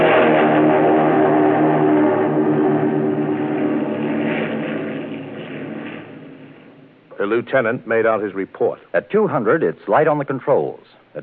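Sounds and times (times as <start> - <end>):
Japanese Zero fighter plane propeller engine roaring taking off down a runway: 0.0 - 7.1
speech: 7.3 - 11.2.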